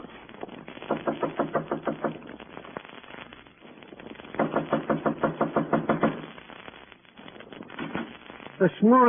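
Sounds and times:
rapid knocking on a door in the morning: 1.0s - 2.1s, 4.4s - 6.2s
speech: 8.8s - 9.0s.

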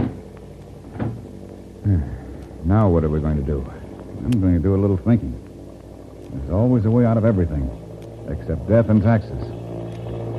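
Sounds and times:
door aboard a plane shutting with a solid thud: 0.0s - 0.2s, 0.8s - 1.3s
speech: 2.7s - 5.4s, 6.3s - 9.6s.

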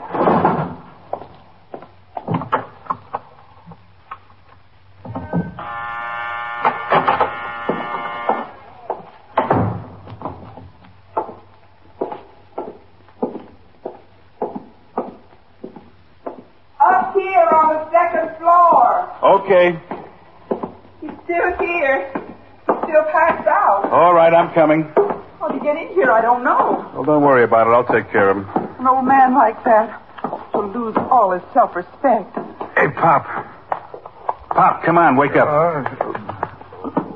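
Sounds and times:
footsteps: 0.0s - 5.6s, 6.6s - 37.1s
harsh electric door buzzer for locked downstairs door: 5.2s - 8.8s
thuds: 9.4s - 10.7s
speech: 24.5s - 24.9s, 26.3s - 30.0s, 30.8s - 33.4s, 34.6s - 36.0s.

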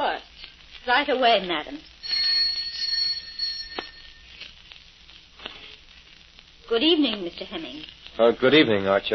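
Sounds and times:
speech: 0.8s - 1.9s, 6.7s - 9.1s
bright high-pitched doorbell chime: 2.0s - 4.3s.

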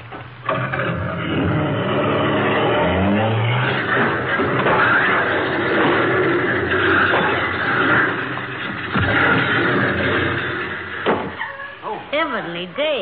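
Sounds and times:
car engine revving with accelerator stuck: 0.5s - 11.2s
debris clattering: 3.4s - 11.4s.

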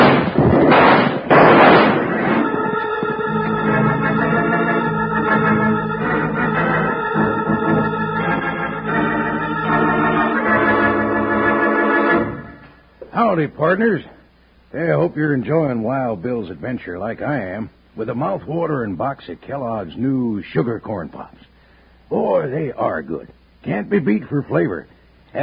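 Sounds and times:
rifle shots being fired: 0.0s - 2.8s
sustained music with steady tones: 1.5s - 12.9s
speech: 13.4s - 21.5s, 22.1s - 25.4s.

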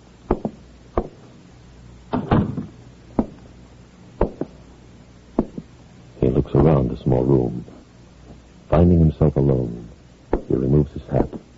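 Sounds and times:
scattered thuds and bumps: 0.3s - 1.2s, 2.1s - 3.4s, 4.2s - 4.6s, 5.4s - 5.7s
sharp knocks on wooden door: 2.4s - 3.4s, 4.2s - 4.5s, 5.4s - 5.7s
speech: 6.8s - 7.8s, 8.7s - 9.9s, 10.5s - 11.5s.

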